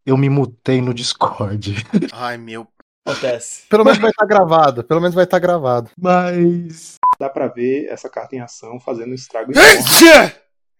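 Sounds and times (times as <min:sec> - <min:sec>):
speech: 0:00.0 - 0:10.4
laughter: 0:03.8 - 0:04.3
sneeze: 0:09.6 - 0:10.4.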